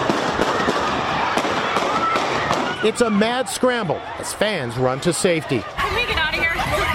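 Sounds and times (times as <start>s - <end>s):
gunshots at a sports event: 0.0s - 3.0s
constant noisy background at a sports event: 0.6s - 6.9s
speech: 2.8s - 6.0s.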